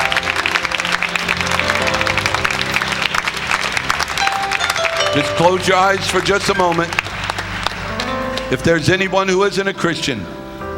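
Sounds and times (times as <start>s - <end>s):
large group applauding: 0.0s - 8.9s
sustained musical tones possibly an organ: 0.0s - 10.5s
speech: 5.2s - 7.0s, 8.5s - 10.4s.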